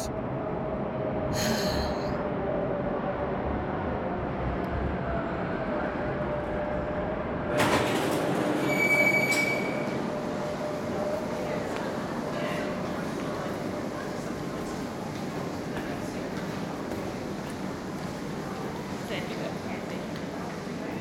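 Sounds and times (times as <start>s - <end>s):
train rumbling on rails: 0.0s - 20.9s
train wheels squealing on rails: 8.6s - 10.0s.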